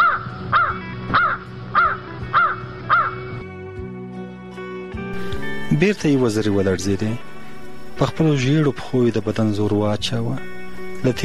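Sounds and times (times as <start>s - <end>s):
crow cawing: 0.0s - 3.4s
speech: 5.8s - 7.3s, 8.0s - 11.2s.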